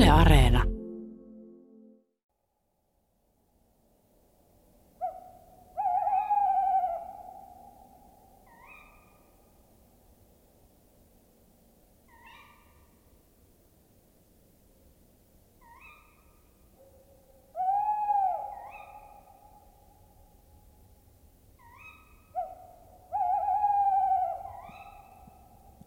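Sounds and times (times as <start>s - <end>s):
speech: 0.1s - 0.7s
owls hooting at night: 5.0s - 9.5s, 12.1s - 13.0s, 15.6s - 20.4s, 21.6s - 25.8s.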